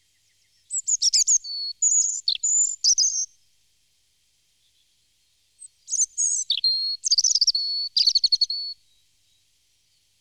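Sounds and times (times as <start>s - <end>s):
European robin singing: 0.0s - 3.4s, 4.3s - 10.1s.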